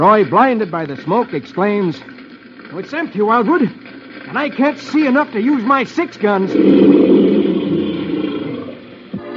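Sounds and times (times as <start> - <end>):
speech: 0.0 - 7.4
tiger roaring: 6.4 - 8.9.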